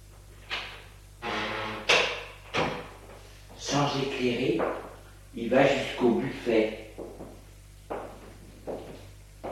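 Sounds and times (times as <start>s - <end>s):
kitchen door opening: 0.5s - 2.9s
kitchen door scraping as it swings: 1.2s - 2.8s
kitchen door thud: 1.8s - 2.9s
speech: 3.7s - 7.4s.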